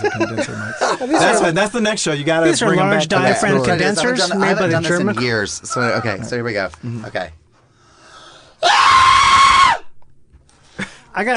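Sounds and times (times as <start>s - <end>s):
laughter: 0.0s - 1.6s
speech: 0.0s - 7.4s, 11.2s - 11.3s
quiet breathing: 6.8s - 8.6s
shrill exaggerated cartoon scream by a voice: 8.6s - 9.9s.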